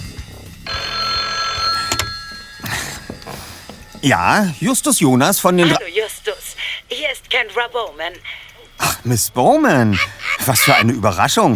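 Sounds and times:
telephone bell ringing: 0.7s - 4.4s
speech: 4.0s - 6.1s, 7.4s - 8.4s, 9.0s - 11.5s
laughter: 9.7s - 11.1s.

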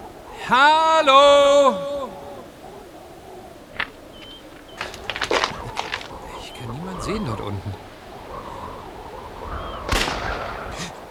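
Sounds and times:
steady noise: 0.0s - 11.0s
speech: 0.5s - 1.9s
single sharp gunshot with echo: 9.9s - 11.0s.

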